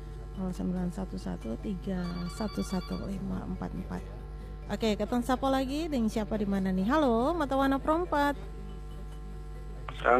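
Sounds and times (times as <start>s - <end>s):
speech: 0.4s - 8.6s, 10.0s - 10.1s
telephone ringing with a call coming in on a call-in phone line: 2.0s - 3.4s.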